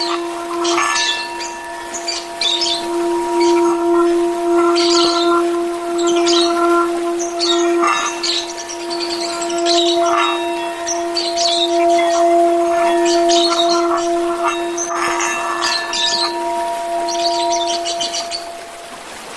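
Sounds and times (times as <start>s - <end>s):
Oriental magpie-robin song of sweet whistles and scratchy chirps: 0.0s - 19.3s
steady hum: 0.0s - 19.3s.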